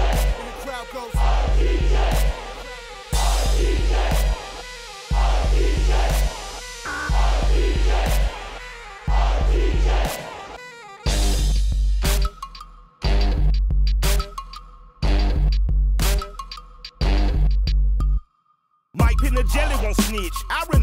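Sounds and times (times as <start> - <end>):
crowd roaring, cheering and shouting: 0.0 - 11.2
heavy pulsing bass beat music: 0.0 - 18.2, 19.0 - 20.8.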